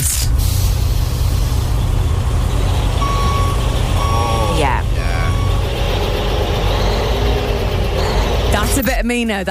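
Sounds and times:
heavy machinery working: 0.2 - 9.2
high evenly pitched reversing-style beeps: 3.0 - 5.7, 6.6 - 8.8
sweeping tone: 3.0 - 9.0
speech: 9.1 - 9.4.

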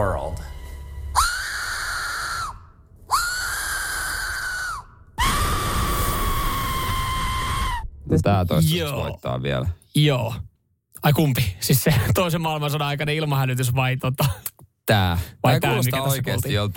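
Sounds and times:
shrill whistle blasts: 0.4 - 8.0
speech: 8.1 - 16.7.

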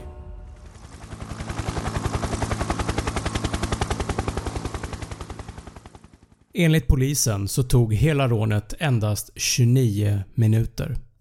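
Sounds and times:
helicopter rotor chopping while lifting off and flying away: 0.1 - 6.6
speech: 6.6 - 11.0.

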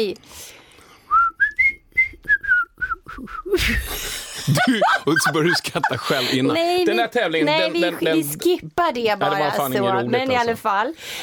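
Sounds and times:
speech: 0.0 - 0.6, 3.2 - 11.2
person attempting to whistle a halting tune: 1.1 - 3.7
sudden burst of airy noise: 3.5 - 4.5, 11.0 - 11.2
laughter: 3.9 - 8.1.

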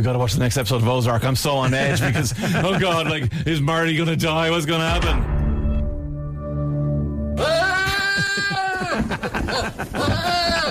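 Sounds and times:
speech: 0.0 - 5.4
laughter: 1.6 - 3.4, 7.4 - 10.6
low booming synth tone: 4.9 - 7.4.

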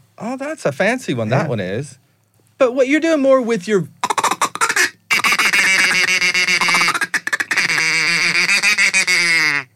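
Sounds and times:
speech: 0.2 - 2.0, 2.6 - 4.0
duck call blown producing nasal quacking: 4.0 - 9.7.

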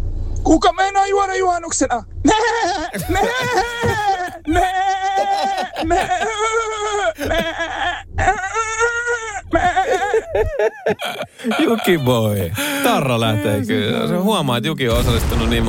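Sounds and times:
speech: 0.5 - 8.4, 10.4 - 15.6
person imitating a sheep bleating: 2.3 - 10.6
laughter: 2.4 - 14.1.

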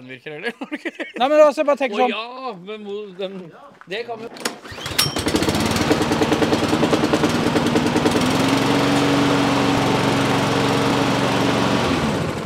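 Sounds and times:
speech: 0.0 - 5.1
laughter: 0.4 - 2.2
two-stroke lawn mower engine running: 4.4 - 12.4.

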